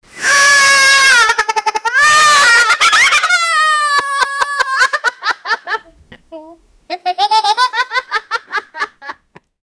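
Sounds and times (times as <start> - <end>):
kids laughing: 1.2 - 6.0, 6.9 - 9.4.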